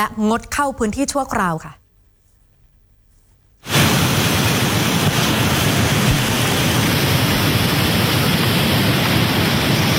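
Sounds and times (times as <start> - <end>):
speech: 0.0 - 1.8
flash floodwater rushing over a waterfall: 3.7 - 9.9.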